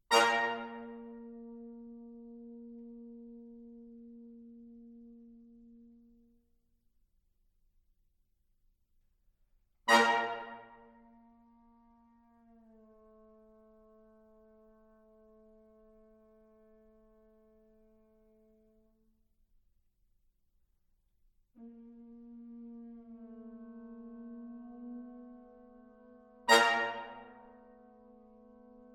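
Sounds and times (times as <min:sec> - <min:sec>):
brass quintet playing slowly and tentatively: 0:00.0 - 0:06.4, 0:09.9 - 0:19.0, 0:21.6 - 0:28.9.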